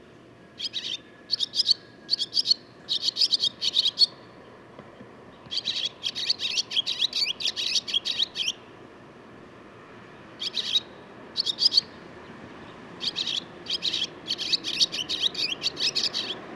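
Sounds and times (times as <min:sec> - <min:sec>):
barn swallow twittering: 0:00.6 - 0:04.1, 0:05.5 - 0:08.6, 0:10.4 - 0:12.0, 0:12.6 - 0:16.4.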